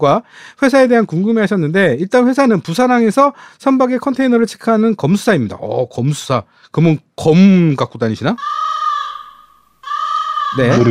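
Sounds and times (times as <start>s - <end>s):
speech: 0.0s - 8.7s, 10.5s - 10.8s
crow cawing: 8.4s - 10.8s.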